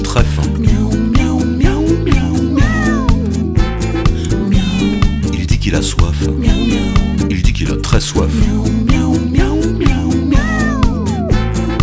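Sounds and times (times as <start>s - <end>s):
loud rhythmic music with a steady beat: 0.0s - 11.8s
cat meowing: 2.5s - 3.3s, 10.3s - 11.4s
speech: 5.7s - 6.9s, 7.6s - 8.7s.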